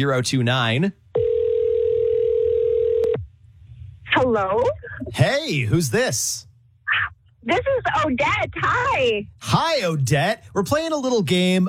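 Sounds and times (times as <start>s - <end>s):
speech: 0.0s - 1.0s, 4.2s - 11.6s
telephone ringing tone on an outgoing call: 1.2s - 3.2s.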